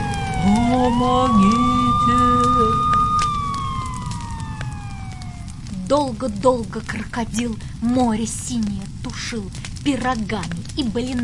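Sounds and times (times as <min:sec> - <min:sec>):
fire engine siren wailing: 0:00.0 - 0:06.4
speech: 0:00.8 - 0:02.9, 0:05.9 - 0:11.2.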